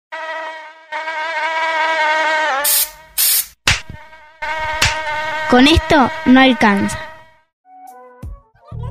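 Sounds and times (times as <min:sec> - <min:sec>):
high-pitched mosquito whine: 0:00.1 - 0:03.2, 0:03.9 - 0:07.3
short loud bursts of hissing noise: 0:02.7 - 0:04.0
speech: 0:05.5 - 0:07.1.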